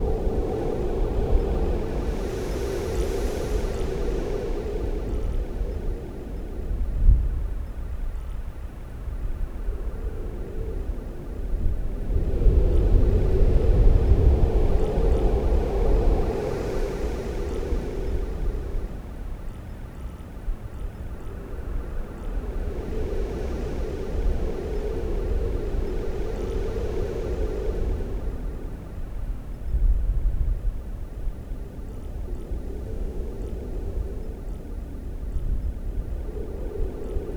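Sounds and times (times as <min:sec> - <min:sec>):
calm sea breeze: 0:00.0 - 0:08.1, 0:08.7 - 0:37.3.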